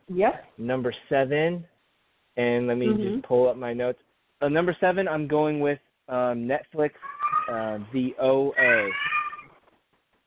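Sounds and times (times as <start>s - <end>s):
speech: 0.1s - 1.7s, 2.4s - 9.1s
cat meowing: 7.0s - 7.8s, 8.6s - 9.5s.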